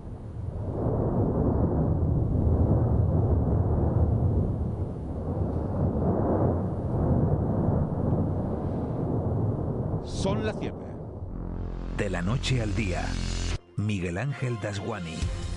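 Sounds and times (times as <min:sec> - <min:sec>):
volcano erupting on La Palma rumbling: 0:00.0 - 0:12.0
speech: 0:10.2 - 0:10.7, 0:12.1 - 0:15.4.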